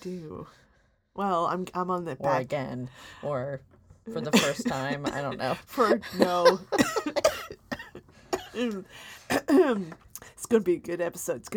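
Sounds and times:
speech: 0.0s - 7.6s, 8.6s - 11.5s
harsh coughs into a microphone: 6.7s - 8.7s, 9.3s - 9.8s.

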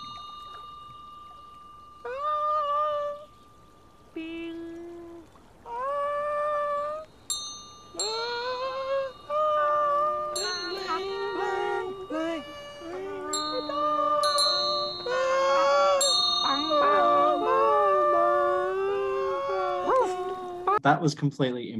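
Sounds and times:
hand bell ringing: 0.0s - 4.2s, 7.2s - 18.4s
loud wavering dog-like howls: 0.0s - 20.8s
speech: 20.8s - 21.7s.

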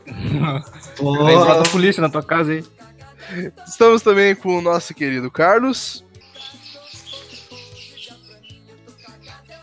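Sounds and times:
speech: 0.3s - 6.6s
bird chirping: 6.1s - 9.6s.

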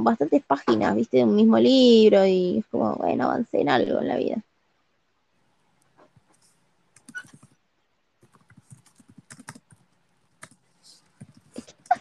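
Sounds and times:
speech: 0.0s - 4.5s
typing on a computer keyboard: 8.2s - 11.9s.

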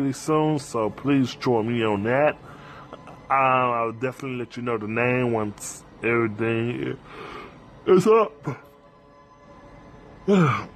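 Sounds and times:
speech: 0.0s - 2.6s, 3.3s - 8.6s, 10.3s - 10.7s
person yawning: 10.2s - 10.7s.

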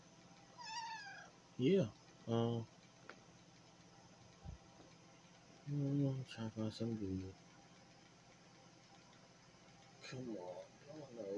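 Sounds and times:
hiss: 0.0s - 11.3s
cat meowing: 0.6s - 1.3s
speech: 1.6s - 2.8s, 5.7s - 7.5s, 10.1s - 11.3s.

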